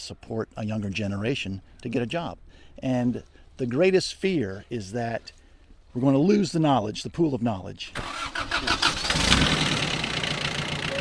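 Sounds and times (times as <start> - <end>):
speech: 0.0 - 5.4, 6.0 - 9.6
tractor engine on a farm starting up: 7.9 - 10.9.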